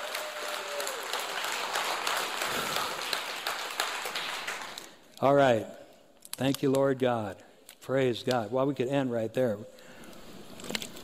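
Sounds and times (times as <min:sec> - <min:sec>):
crowd applause filling the room: 0:00.0 - 0:05.0
speech: 0:05.2 - 0:05.8, 0:06.4 - 0:09.8.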